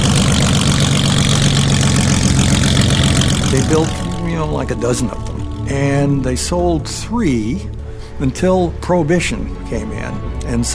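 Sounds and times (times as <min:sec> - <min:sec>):
airplane engine of a flat-bottomed sea sled boat roaring on Seattle waters: 0:00.0 - 0:10.7
speech: 0:03.7 - 0:10.7.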